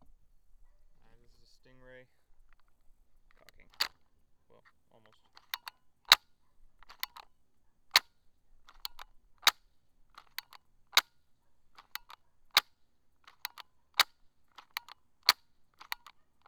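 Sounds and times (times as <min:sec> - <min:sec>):
Stingray gun cocking: 0:02.5 - 0:04.0, 0:05.2 - 0:07.3, 0:07.9 - 0:16.4.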